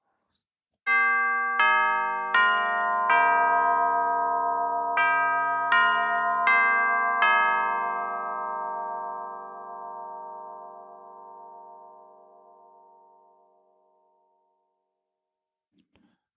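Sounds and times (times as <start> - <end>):
time melody clock chiming a slow melody of bright ringing tones: 0.9 - 12.6.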